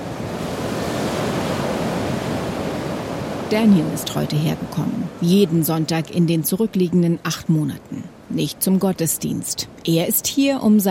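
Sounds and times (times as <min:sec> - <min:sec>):
loud Pacific Ocean surf by the US-Mexico border fence: 0:00.0 - 0:06.6
speech: 0:03.5 - 0:10.8.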